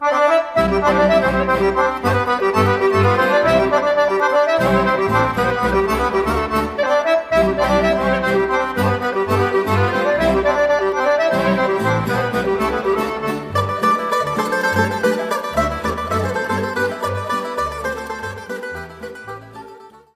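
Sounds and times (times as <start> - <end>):
Bulgarian horo folk dance music: 0.0 - 20.1.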